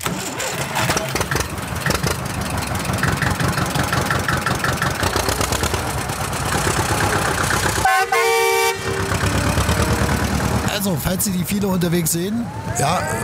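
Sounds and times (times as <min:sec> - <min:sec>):
tractor engine chugging: 0:00.0 - 0:13.2
tractor horn toot: 0:07.8 - 0:10.6
speech: 0:11.2 - 0:13.2.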